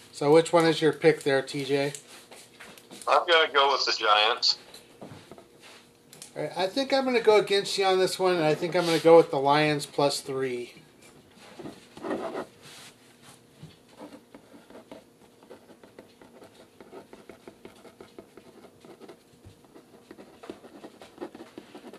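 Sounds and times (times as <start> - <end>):
speech: 0.2 - 2.2, 3.1 - 5.2, 6.4 - 10.8
pen or pencil scratching across paper writing a message: 14.0 - 21.9.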